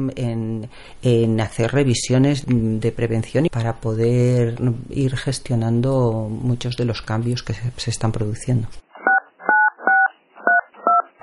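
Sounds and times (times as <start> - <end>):
speech: 0.0 - 8.8
telephone keypad two-tone dialing beeps: 9.1 - 11.1.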